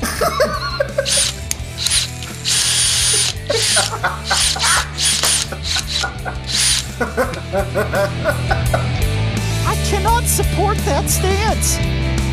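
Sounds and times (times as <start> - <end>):
laughter: 0.0 - 1.5, 3.4 - 9.1
harmonica melody: 0.9 - 7.2
several power drills whirring in a tune: 1.0 - 7.0
speech: 7.0 - 9.1, 9.7 - 12.2.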